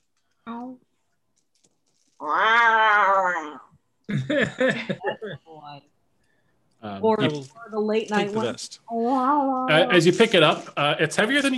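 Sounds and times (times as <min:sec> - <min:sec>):
person imitating a cat's meow: 0:02.2 - 0:03.7
laughter: 0:04.1 - 0:05.4
speech: 0:04.3 - 0:06.0, 0:07.0 - 0:11.5.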